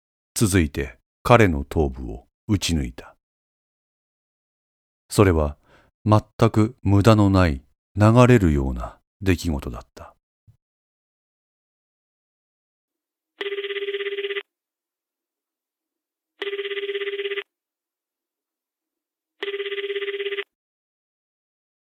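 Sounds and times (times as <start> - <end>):
speech: 0.4 - 3.2, 5.1 - 10.1
phone ringing unanswered: 13.4 - 14.5, 16.4 - 17.5, 19.4 - 20.6.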